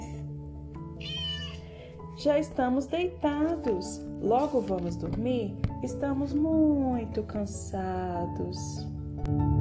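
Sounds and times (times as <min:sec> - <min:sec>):
cat meowing: 0:00.9 - 0:01.9
speech: 0:02.2 - 0:09.5.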